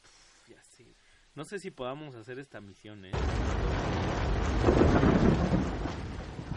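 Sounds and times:
speech: 0.8s - 6.0s
low rumble of thunder: 3.2s - 6.5s
steady rain during a storm: 3.2s - 6.5s.

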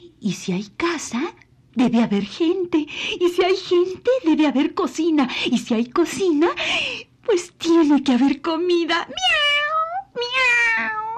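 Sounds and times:
speech: 0.2s - 9.5s
cat meowing: 9.1s - 11.1s.

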